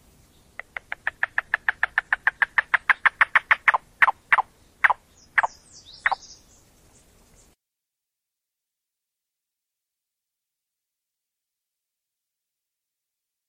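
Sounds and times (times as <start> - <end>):
Yellow-billed Cuckoo call of hollow knocking notes: 0.6 - 6.3.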